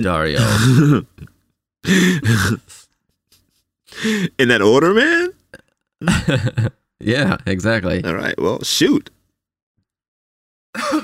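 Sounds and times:
speech: 0.0s - 1.2s, 1.8s - 2.8s, 3.9s - 5.4s, 6.0s - 9.2s, 10.8s - 11.0s
harsh cough: 0.4s - 1.1s, 10.8s - 11.0s.

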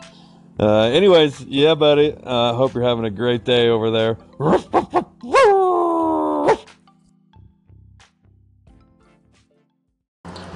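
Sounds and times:
speech: 0.6s - 5.5s
person imitating a barking dog: 4.4s - 6.7s.

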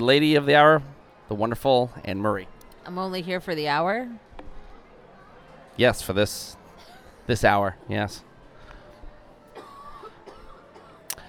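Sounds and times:
speech: 0.0s - 4.3s, 5.8s - 6.6s, 7.3s - 8.3s
faint murmur of room sound: 2.5s - 11.2s
soft coughs from people with colds and allergies in Central Florida: 6.8s - 7.2s, 9.6s - 11.1s.

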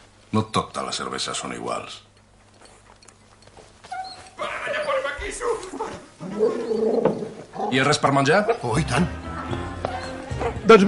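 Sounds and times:
speech: 0.3s - 2.1s, 5.2s - 9.6s, 10.6s - 10.8s
Doberman dog whining: 3.8s - 7.8s, 9.9s - 10.6s
Doberman dogs growling and snarling: 5.7s - 8.6s.

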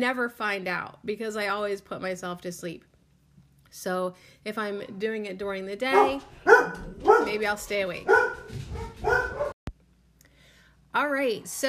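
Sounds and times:
speech: 0.0s - 2.9s, 3.7s - 8.6s, 10.9s - 11.6s
dog barking: 5.9s - 9.6s.

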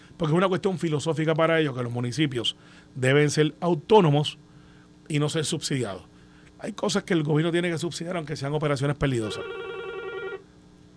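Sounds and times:
quiet hum: 0.0s - 10.9s
speech: 0.2s - 4.5s, 5.1s - 9.7s
telephone ringing with a steady electronic trill: 9.2s - 10.4s.

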